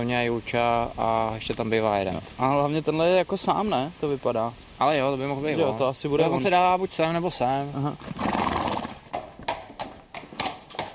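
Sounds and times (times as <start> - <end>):
speech: 0.0 - 8.3
hooves of a horse being led clip-clopping: 6.4 - 10.9.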